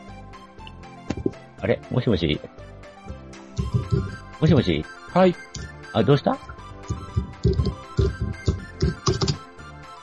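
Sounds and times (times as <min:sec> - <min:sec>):
speech: 0:01.6 - 0:02.6, 0:04.4 - 0:06.5
computer keyboard typing: 0:06.8 - 0:09.4.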